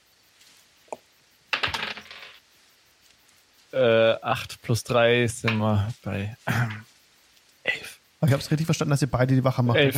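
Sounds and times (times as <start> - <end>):
dice rattling across a table in a tabletop role-playing game: 1.5 - 2.4
speech: 3.7 - 6.9, 8.2 - 9.9.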